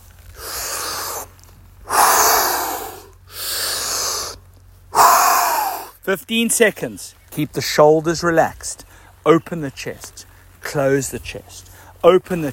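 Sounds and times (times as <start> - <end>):
deep breathing in and out during exercise: 0.3 - 6.0, 8.8 - 9.2, 11.6 - 12.0
speech: 6.1 - 12.5.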